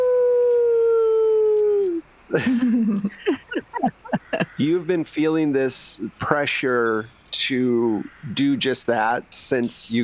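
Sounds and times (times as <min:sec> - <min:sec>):
person imitating a wolf howl with yips and yelps: 0:00.0 - 0:02.0
speech: 0:02.3 - 0:04.0, 0:04.6 - 0:10.0
laughter: 0:02.3 - 0:04.9.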